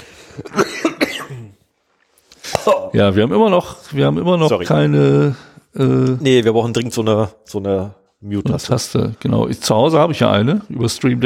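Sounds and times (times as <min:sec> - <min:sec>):
speech: 0:00.4 - 0:00.7, 0:02.6 - 0:11.2
person coughing after choking on something: 0:00.4 - 0:01.7, 0:02.4 - 0:03.0.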